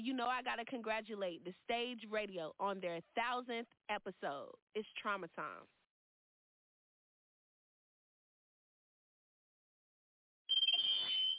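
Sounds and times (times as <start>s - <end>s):
speech: 0.0s - 5.8s
smoke alarm shrieking: 10.5s - 11.3s.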